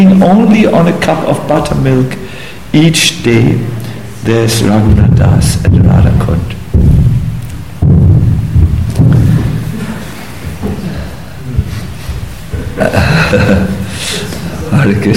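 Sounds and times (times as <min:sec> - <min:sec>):
speech: 0:00.0 - 0:06.6, 0:12.8 - 0:14.1, 0:14.7 - 0:15.1
deep rolling thunder rumbling: 0:04.8 - 0:10.0
laughter: 0:09.4 - 0:11.9, 0:12.5 - 0:15.1.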